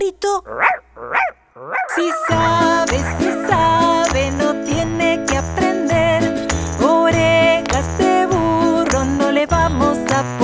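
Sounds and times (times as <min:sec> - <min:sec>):
speech: 0:00.2 - 0:00.7
large farm dog barking: 0:00.5 - 0:02.3
children's song about a farm: 0:01.9 - 0:10.4.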